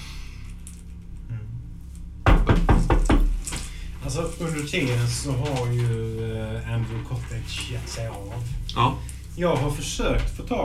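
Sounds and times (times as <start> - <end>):
fist knocking on the door of a tower: 2.2 - 3.4
speech: 4.1 - 10.6.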